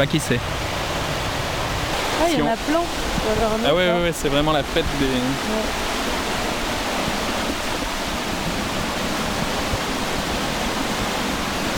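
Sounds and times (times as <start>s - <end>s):
speech: 0.0s - 0.7s, 2.2s - 5.9s
cascading water from a waterfall roaring: 0.0s - 11.7s.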